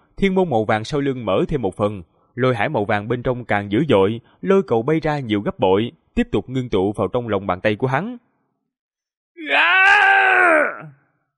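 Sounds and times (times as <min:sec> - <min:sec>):
speech: 0:00.2 - 0:08.3
man screaming in pain: 0:09.4 - 0:11.0.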